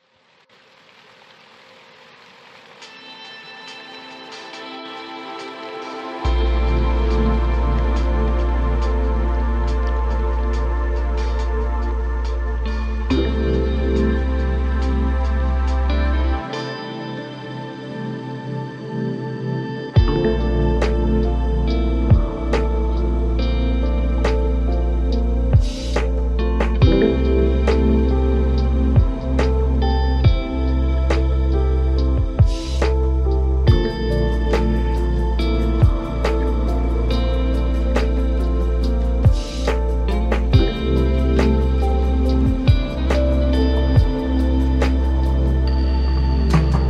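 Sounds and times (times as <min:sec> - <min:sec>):
deep ocean lo-fi ambient music: 0:00.7 - 0:46.8.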